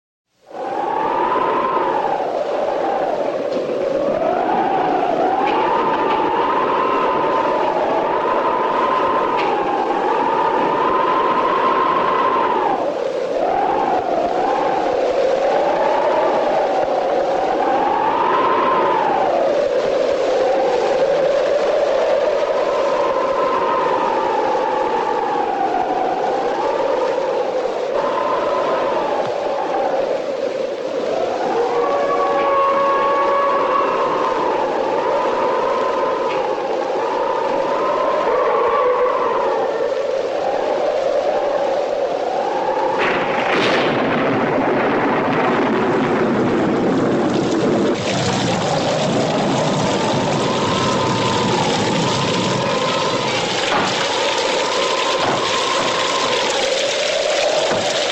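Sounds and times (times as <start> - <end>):
rain: 0.3 - 58.1
thunder: 43.0 - 56.6.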